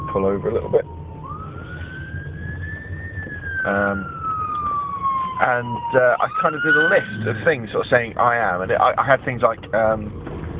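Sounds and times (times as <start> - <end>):
ambulance siren wailing as it passes: 0.0 - 8.6, 9.8 - 10.5
low road and engine rumble: 0.0 - 10.5
speech: 0.1 - 1.1, 3.6 - 4.2, 5.4 - 10.3
brief harsh blare: 6.3 - 8.0.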